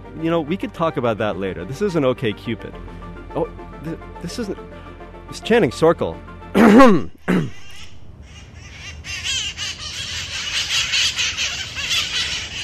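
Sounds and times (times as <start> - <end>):
speech: 0.2 - 7.6
flock of wild parrots squawking and screeching: 7.5 - 12.6.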